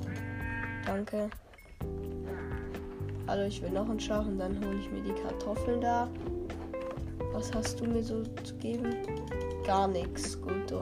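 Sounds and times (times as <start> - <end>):
single sheep bleating: 0.0 - 1.0, 2.2 - 3.0
speech: 0.9 - 1.9, 3.3 - 6.4, 7.3 - 10.7.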